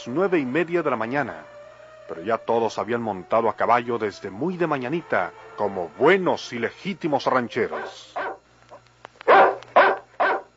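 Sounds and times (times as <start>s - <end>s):
speech: 0.0s - 8.2s
low steady hum: 0.0s - 10.5s
dog barking on a ranch: 7.7s - 8.4s, 9.2s - 10.5s.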